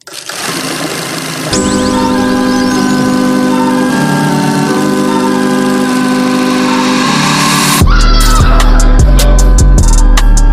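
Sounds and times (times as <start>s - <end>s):
sustained whistle-like synth chords of a podcast theme tune: 1.5s - 10.5s
heavy bass and punchy drums with a driving beat: 7.8s - 10.5s.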